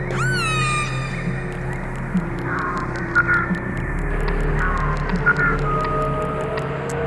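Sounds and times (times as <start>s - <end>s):
whale squeal: 0.1s - 1.8s
scattered clicks: 1.5s - 7.0s.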